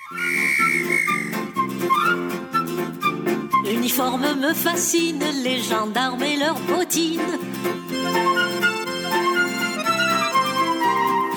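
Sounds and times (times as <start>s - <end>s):
shrill sustained whistle: 0.0s - 3.8s, 8.0s - 11.3s
humorous French song from the interwar period with bouncy musical backing: 0.4s - 11.3s
speech: 3.8s - 8.3s.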